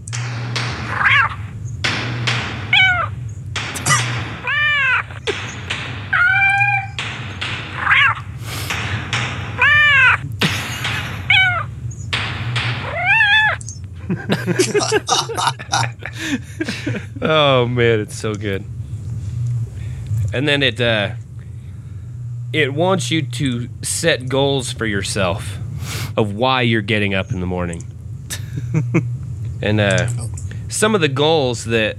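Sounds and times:
sharp rapid clicks: 0:00.0 - 0:13.9
steady low hum: 0:00.0 - 0:31.9
alarm sound of cat yowls and meows: 0:00.7 - 0:01.6, 0:02.4 - 0:03.2, 0:03.8 - 0:08.4, 0:09.3 - 0:10.2, 0:11.2 - 0:12.1, 0:12.7 - 0:13.8
laughter: 0:10.2 - 0:11.3, 0:14.0 - 0:17.8, 0:28.3 - 0:29.1
speech: 0:14.5 - 0:18.8, 0:20.3 - 0:21.2, 0:22.5 - 0:27.9, 0:28.6 - 0:31.9.

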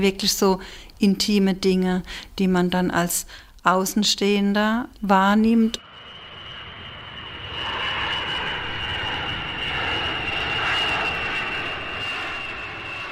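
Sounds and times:
speech: 0:00.0 - 0:05.8
airplane engine roaring at an airport: 0:05.8 - 0:13.1.

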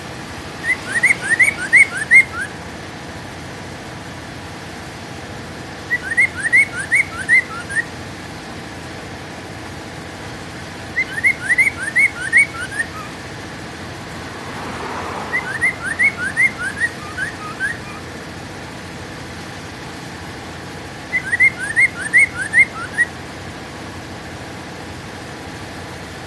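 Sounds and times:
Hwamei whistling song: 0:00.5 - 0:02.6, 0:05.8 - 0:08.0, 0:10.9 - 0:13.3, 0:15.2 - 0:18.2, 0:21.0 - 0:23.2.

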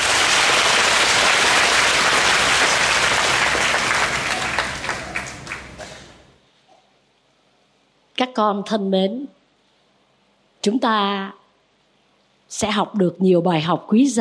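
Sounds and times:
applause from an audience of children at a summer retreat talk: 0:00.0 - 0:06.3
speech: 0:08.3 - 0:09.4, 0:10.6 - 0:11.4, 0:12.5 - 0:14.2.

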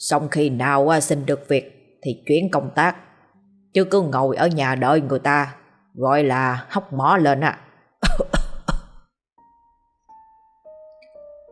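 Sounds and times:
speech: 0:00.0 - 0:03.1, 0:03.7 - 0:07.6
man coughing after choking on his own saliva: 0:08.0 - 0:09.0.

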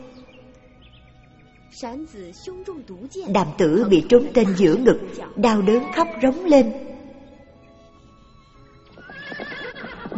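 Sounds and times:
faint tonal background: 0:00.0 - 0:09.6
speech: 0:01.7 - 0:06.9
horse ridden in haste whinnying: 0:08.8 - 0:10.1.

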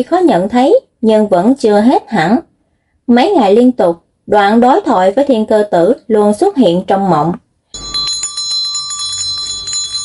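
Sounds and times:
speech: 0:00.0 - 0:02.5, 0:03.1 - 0:07.4
old dull-gold metal bell hanging under a door ringing: 0:07.8 - 0:10.0.

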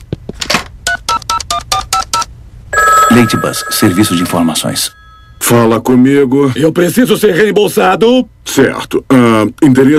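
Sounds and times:
telephone touch-tone dialing beeps: 0:02.8 - 0:05.4
speech: 0:03.1 - 0:09.9.

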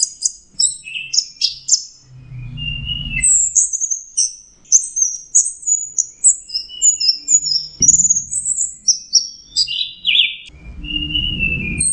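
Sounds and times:
orange-headed thrush song of high chirping and whistled notes: 0:00.0 - 0:11.9
low rumbling noise: 0:02.0 - 0:03.5, 0:10.5 - 0:11.9.

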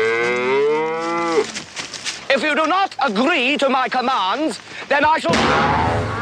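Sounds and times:
cow mooing: 0:00.0 - 0:01.4
speech: 0:02.4 - 0:06.1.

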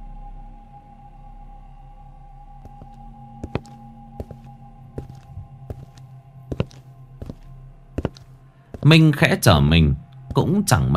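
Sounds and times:
footsteps clomping on a boat deck: 0:02.7 - 0:08.9
speech: 0:08.9 - 0:10.9.

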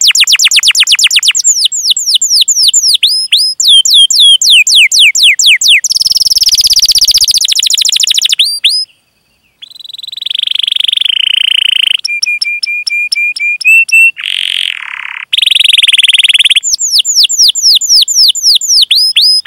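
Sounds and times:
Atlantic canary singing energetically: 0:00.0 - 0:19.4.

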